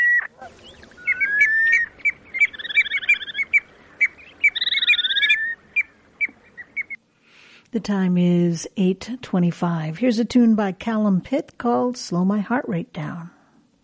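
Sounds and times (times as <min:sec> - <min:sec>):
piping plover calls: 0:00.0 - 0:07.0
speech: 0:07.7 - 0:13.4.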